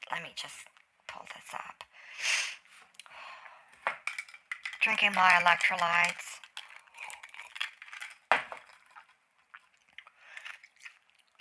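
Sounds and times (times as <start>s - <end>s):
speech: 0.2s - 2.4s, 4.9s - 6.4s
ice being chewed: 5.0s - 11.3s.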